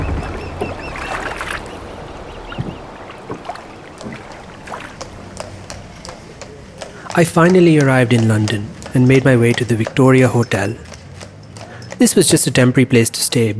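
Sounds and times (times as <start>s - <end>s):
faint bird calls: 0.0s - 7.1s
sloshing waves: 0.0s - 12.3s
water splashes: 0.0s - 12.6s
boat moving through water with low rumble: 0.0s - 13.5s
speech: 7.2s - 10.9s, 12.0s - 13.5s.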